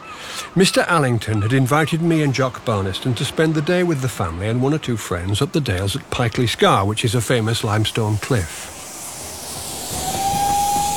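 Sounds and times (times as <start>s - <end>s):
speech: 0.5s - 8.8s
steam train hissing at a railway station: 6.4s - 10.9s
thin steady whistle-like tone: 7.1s - 10.9s.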